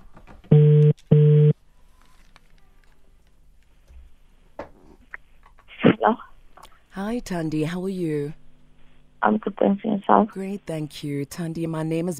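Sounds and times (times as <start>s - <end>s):
telephone ringback tone during an outgoing call: 0.5s - 1.5s
speech: 7.0s - 8.4s, 9.2s - 12.1s.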